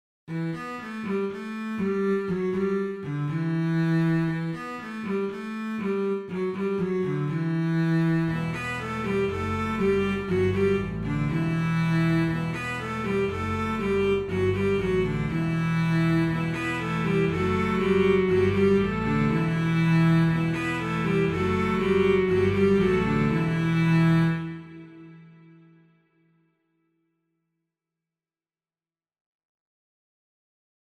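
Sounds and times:
cello strings: 0.3s - 26.1s.

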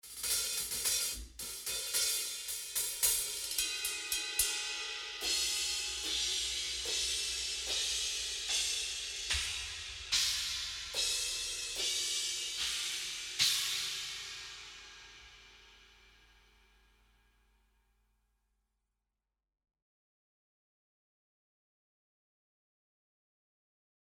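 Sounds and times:
cymbals: 0.0s - 16.7s.

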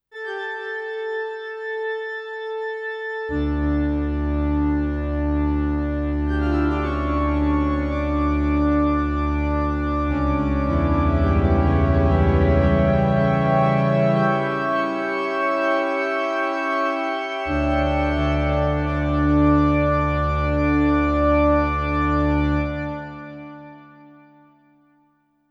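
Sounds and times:
church organ: 0.2s - 24.8s.

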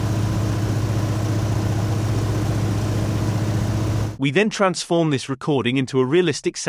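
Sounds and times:
stationary propeller plane engine idling: 0.0s - 4.2s
speech: 4.2s - 6.6s.

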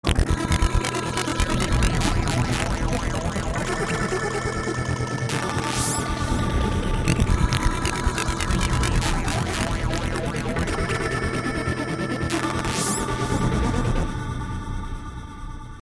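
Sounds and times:
game music: 0.0s - 15.0s.

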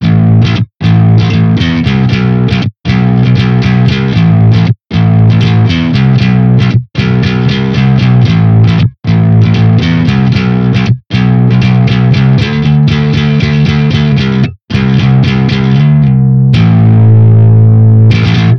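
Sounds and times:
bass rock music: 0.0s - 18.5s.

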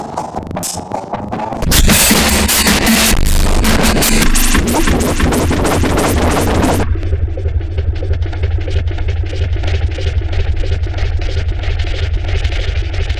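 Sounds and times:
drum loop: 0.2s - 13.0s.

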